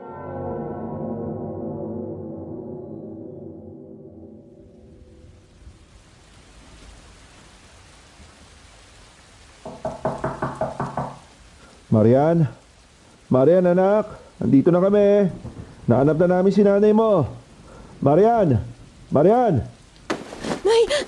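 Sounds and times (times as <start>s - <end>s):
steady rain-like hiss: 4.4s - 21.0s
firm knocks on a door: 9.6s - 11.3s
speech: 12.0s - 12.6s, 13.3s - 17.4s, 18.0s - 19.8s.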